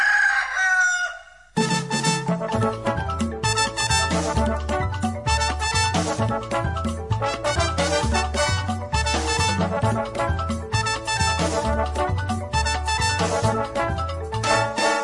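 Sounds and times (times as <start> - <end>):
rooster crowing: 0.0 - 1.5
full band playing steady rhythmic music: 1.6 - 15.0.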